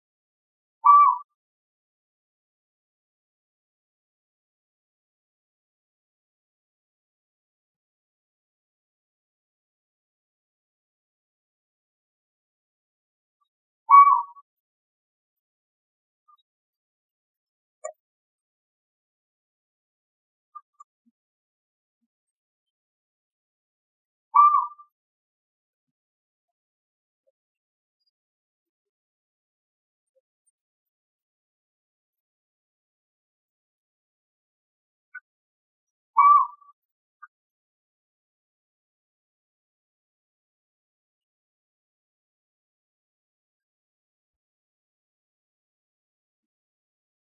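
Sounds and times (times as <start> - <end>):
Asian barred owlet Glaucidium cuculoides calling: 0.8 - 1.3, 13.9 - 14.4, 24.4 - 24.9, 36.2 - 36.6.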